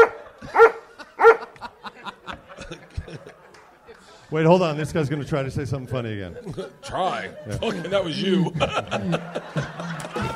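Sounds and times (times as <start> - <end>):
dog barking: 0.0 - 1.5
laughter: 0.0 - 4.2, 6.2 - 10.3
speech: 4.3 - 9.7.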